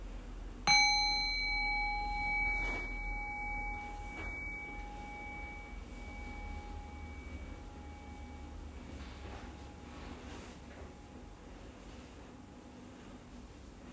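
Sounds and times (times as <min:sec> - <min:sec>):
singing bowl struck as a meditation bell ringing: 0:00.7 - 0:11.2.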